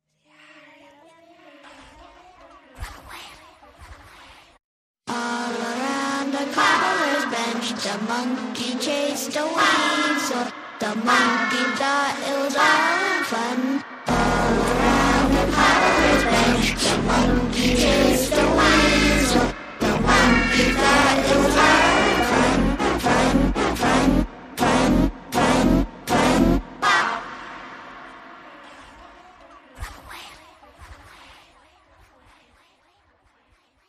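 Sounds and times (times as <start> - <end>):
horror-style nursery rhyme vocals only: 5.1 - 30.5.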